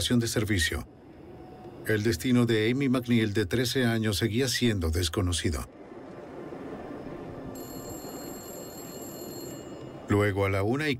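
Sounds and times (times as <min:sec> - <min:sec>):
speech: 0:00.0 - 0:01.0, 0:01.9 - 0:05.8, 0:10.1 - 0:10.9
payphone ringing: 0:07.6 - 0:10.1.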